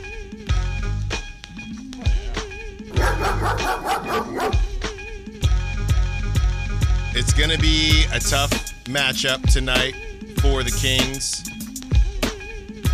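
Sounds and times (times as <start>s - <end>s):
bouncy jingle music bed: 1.2s - 12.9s
dog barking: 2.9s - 4.8s
speech: 7.2s - 11.5s.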